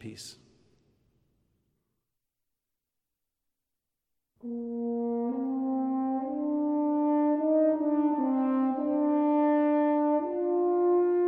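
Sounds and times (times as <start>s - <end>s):
horn playing orchestral excerpts from a piano concerto: 4.4s - 11.2s.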